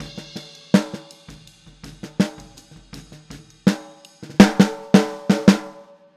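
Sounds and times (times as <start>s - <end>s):
boogaloo snare drum: 0.0s - 5.9s.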